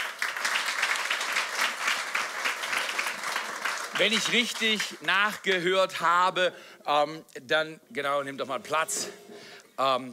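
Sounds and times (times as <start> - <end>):
audience applause: 0.0 - 5.6
speech: 4.0 - 10.1.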